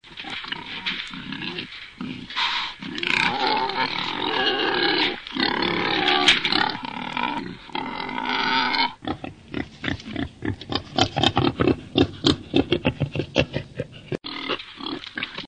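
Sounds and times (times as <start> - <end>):
wild boar: 0.0 - 15.4.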